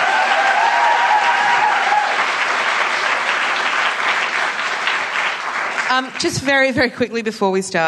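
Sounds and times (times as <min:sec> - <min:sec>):
faint cheering: 0:00.0 - 0:02.7
crowd applauding: 0:00.0 - 0:06.7
speech: 0:05.9 - 0:07.8.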